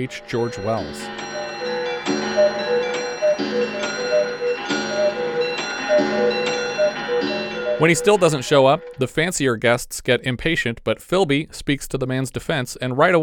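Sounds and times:
speech: 0.0s - 1.7s, 7.8s - 13.2s
dense cluster of clocks chiming in an inventor's home: 0.0s - 8.8s.

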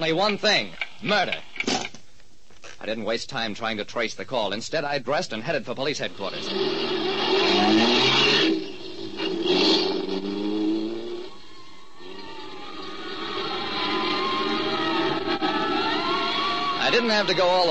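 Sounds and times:
speech: 0.0s - 1.8s, 2.8s - 8.4s, 17.1s - 17.6s
car engine revving and accelerating through streets: 6.2s - 17.6s.

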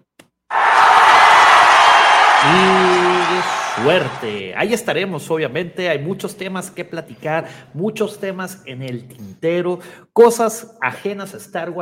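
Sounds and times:
large crowd applauding: 0.5s - 4.5s
speech: 2.5s - 2.9s, 3.8s - 11.7s.

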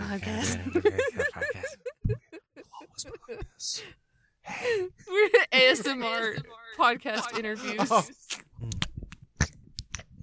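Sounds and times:
speech: 0.1s - 1.4s, 5.6s - 8.2s
laughter: 0.2s - 3.8s, 5.1s - 8.4s
wet ASMR gum chewing with smacks and clicky snaps: 8.3s - 10.2s.

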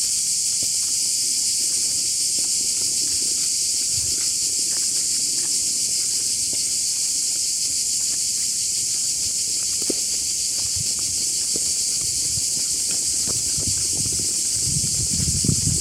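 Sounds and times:
cicadas droning at an artificial lake in Tirana, Albania: 0.0s - 15.8s.

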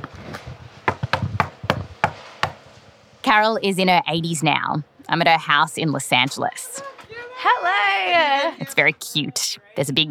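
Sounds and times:
knocking on the wooden front door of a house in Los Angeles: 0.9s - 2.6s
speech: 3.3s - 10.0s.

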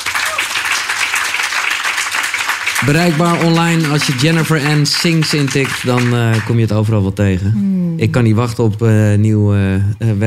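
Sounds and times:
audience applause for a singer at the close of an interview: 0.0s - 6.8s
speech: 2.8s - 10.2s.

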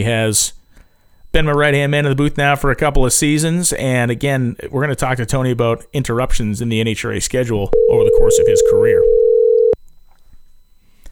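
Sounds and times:
speech: 0.0s - 0.6s, 1.3s - 9.2s
phone line click: 7.8s - 9.8s
telephone ringback tone while placing a call to Indiana: 7.8s - 9.8s.

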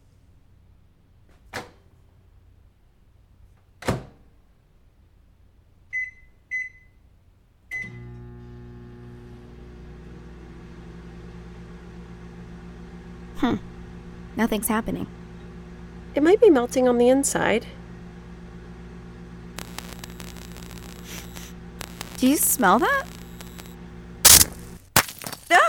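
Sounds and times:
steady low hum of the microwave oven running: 7.7s - 24.9s
speech: 13.4s - 13.7s, 14.4s - 15.2s, 16.2s - 17.8s, 22.2s - 23.2s.

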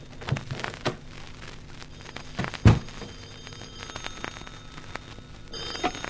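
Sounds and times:
soft noise: 0.0s - 6.0s
telephone ringing: 2.0s - 6.0s
loud thump: 2.6s - 2.9s.

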